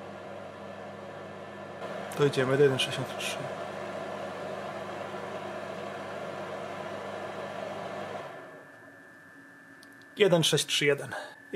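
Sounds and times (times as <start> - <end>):
faint electrical hum of a battery device: 0.0 - 11.5
small cooling fan inside a battery device whirring: 0.0 - 11.5
speech: 2.2 - 3.6, 10.2 - 11.5.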